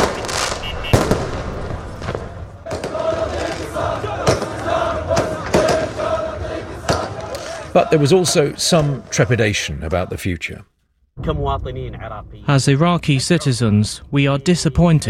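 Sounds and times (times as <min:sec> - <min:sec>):
firework bangs at night street celebrations: 0:00.0 - 0:07.7
crowd din at night street celebrations: 0:00.0 - 0:10.1
speech: 0:07.8 - 0:15.0.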